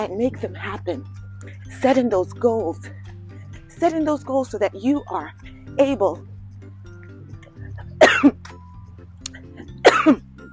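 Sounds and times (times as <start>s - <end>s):
speech: 0.0s - 3.1s, 3.8s - 6.3s, 8.2s - 8.5s, 10.0s - 10.2s
person coughing while covering a mile at a tracked pace: 7.5s - 8.6s, 9.3s - 10.3s.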